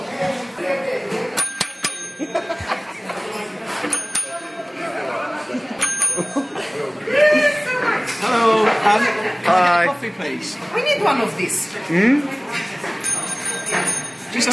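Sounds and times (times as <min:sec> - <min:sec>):
voices chattering: 0:00.0 - 0:14.5
small hand bell ringing: 0:01.4 - 0:02.7, 0:03.9 - 0:04.8, 0:05.8 - 0:06.7, 0:13.0 - 0:14.5
laughter: 0:02.0 - 0:03.8, 0:05.1 - 0:09.4
speech: 0:08.8 - 0:12.4.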